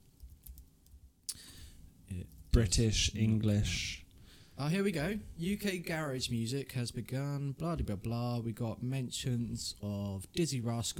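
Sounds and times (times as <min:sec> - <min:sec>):
typing on a keyboard: 0:00.2 - 0:01.0
speech: 0:02.1 - 0:04.0, 0:04.6 - 0:10.9.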